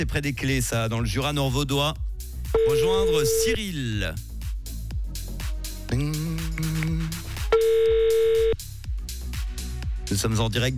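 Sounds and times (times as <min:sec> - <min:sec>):
speech: 0:00.0 - 0:02.0, 0:02.6 - 0:04.3, 0:05.9 - 0:06.2, 0:10.1 - 0:10.7
rhythmic music bed: 0:00.0 - 0:10.7
long flat beep: 0:02.6 - 0:03.6, 0:07.6 - 0:08.6
telephone ringing on a live call line: 0:02.6 - 0:03.6, 0:07.6 - 0:08.6.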